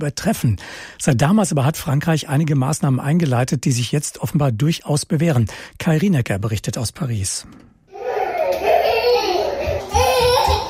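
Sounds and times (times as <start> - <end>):
speech: 0.0 - 7.7
toddlers whining and babbling in an air-conditioned basement room: 7.9 - 10.6.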